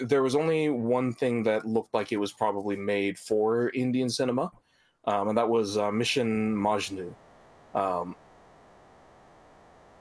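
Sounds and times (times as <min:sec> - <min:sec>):
speech: 0:00.0 - 0:08.2
low hum: 0:05.4 - 0:10.0
static hiss: 0:06.2 - 0:10.0.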